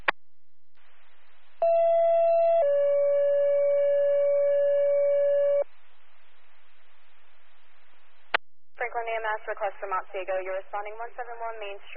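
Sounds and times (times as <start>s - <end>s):
faint radio hiss: 0.8s - 2.1s, 5.0s - 11.9s
emergency dispatch paging tones for an ambulance service: 1.6s - 5.6s
speech: 9.0s - 11.9s.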